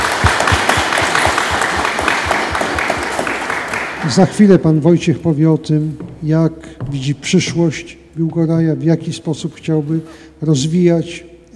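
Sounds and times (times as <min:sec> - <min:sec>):
audience applause welcoming a candidate: 0:00.0 - 0:04.4
speech: 0:04.0 - 0:11.5.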